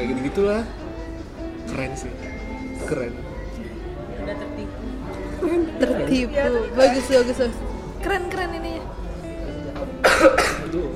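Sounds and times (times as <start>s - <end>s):
faint murmur of voices: 0.0s - 10.9s
speech: 0.2s - 0.8s, 1.7s - 3.7s, 5.4s - 8.7s
harsh coughs: 10.0s - 10.8s.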